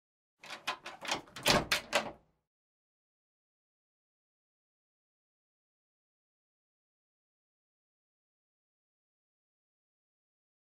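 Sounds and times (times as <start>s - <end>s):
door opening: 0.4s - 2.2s.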